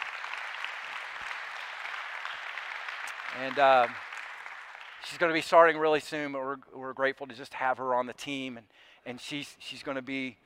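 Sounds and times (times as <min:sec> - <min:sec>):
audience applause from a room full of people: 0:00.0 - 0:05.4
speech: 0:03.3 - 0:04.0, 0:05.0 - 0:10.4.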